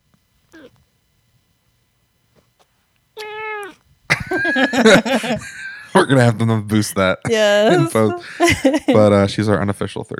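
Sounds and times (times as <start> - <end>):
cat chirpy call: 0.5 - 0.8, 3.2 - 4.4
cat meowing: 0.5 - 0.8, 3.2 - 4.4, 7.7 - 8.2
laughter: 4.1 - 6.5, 7.7 - 9.2
speech: 4.5 - 10.1.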